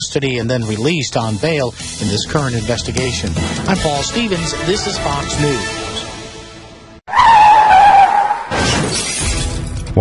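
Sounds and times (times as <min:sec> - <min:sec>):
speech: 0:00.1 - 0:06.1
car tires squealing in a skid: 0:07.1 - 0:08.8
car slamming into something: 0:07.2 - 0:09.7
glass shattering: 0:08.5 - 0:09.6.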